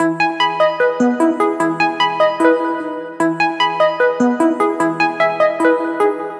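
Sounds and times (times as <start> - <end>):
melodic arpeggio loop in E: 0.0 - 6.3.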